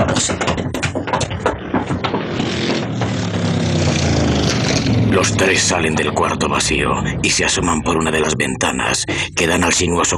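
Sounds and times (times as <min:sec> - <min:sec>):
sharp knocks: 0:00.0 - 0:06.9
car engine rumbling: 0:00.0 - 0:10.1
speech: 0:05.2 - 0:10.1.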